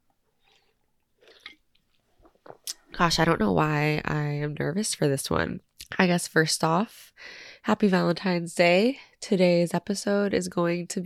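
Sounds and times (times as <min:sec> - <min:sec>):
person sipping water with wet slurping: 0:00.2 - 0:03.3
speech: 0:03.0 - 0:11.0.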